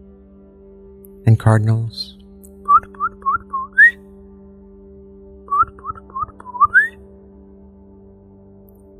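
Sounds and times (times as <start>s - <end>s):
speech: 1.3s - 2.2s
person whistling: 2.7s - 4.0s, 5.5s - 7.0s.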